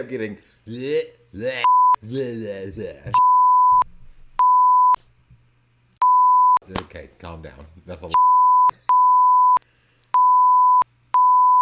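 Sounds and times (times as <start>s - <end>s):
speech: 0.0s - 3.3s, 6.7s - 8.2s
censor bleep tone at a single pure pitch: 1.7s - 2.0s, 3.2s - 3.8s, 4.4s - 5.0s, 6.0s - 6.6s, 8.2s - 9.6s, 10.2s - 11.6s.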